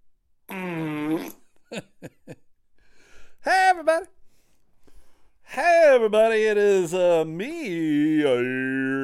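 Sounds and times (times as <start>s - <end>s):
comedic fart sound effect: 0.5s - 1.4s
speech: 1.2s - 2.4s, 6.0s - 8.9s.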